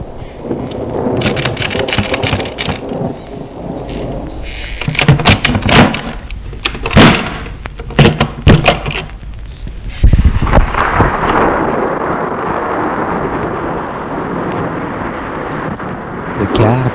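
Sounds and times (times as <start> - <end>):
deep rumbles of thunder: 0.0 - 16.9
steady rain: 0.0 - 16.9
heavy wooden door creaking and thudding open: 1.2 - 3.0, 4.5 - 9.2.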